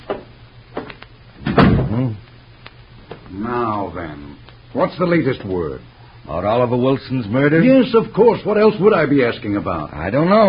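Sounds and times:
door thumping shut: 1.4s - 2.1s
person murmuring: 1.9s - 2.3s
speech: 3.9s - 10.4s.

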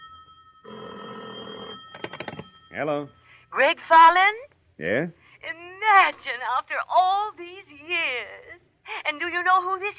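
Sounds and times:
telephone ringing with bright steady bell tone: 0.0s - 3.3s
speech: 2.8s - 8.4s, 9.1s - 9.9s.

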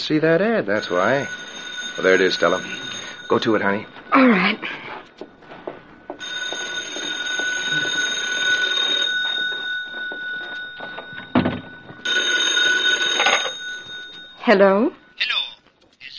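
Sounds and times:
telephone ringing with harsh electric bell trill: 0.0s - 15.6s
speech: 0.1s - 5.3s, 14.5s - 15.4s.

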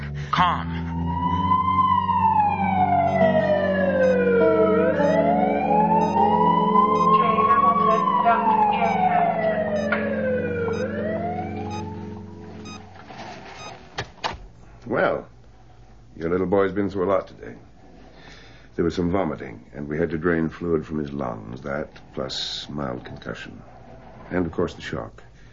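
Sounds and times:
speech: 0.4s - 0.8s, 16.2s - 17.7s, 18.8s - 25.3s
loud ambulance siren wailing: 0.8s - 12.8s.

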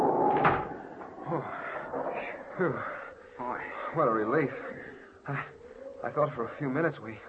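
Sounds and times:
door opening and swinging shut: 0.0s - 2.2s
speech: 2.6s - 7.2s.

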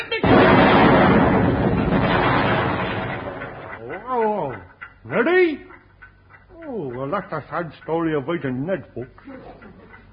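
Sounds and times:
barrel of saxophones exploding: 0.2s - 3.8s
speech: 7.2s - 10.1s.

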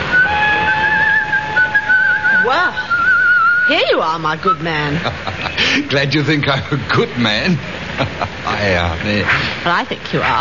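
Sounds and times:
man whistling a tune: 0.0s - 4.7s
speech: 3.7s - 10.3s
laughter: 4.7s - 8.8s.

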